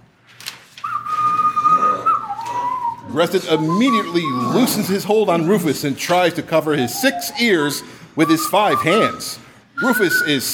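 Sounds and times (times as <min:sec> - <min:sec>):
person whistling one long high note: 0:00.8 - 0:05.0, 0:06.8 - 0:10.5
speech: 0:03.1 - 0:10.5.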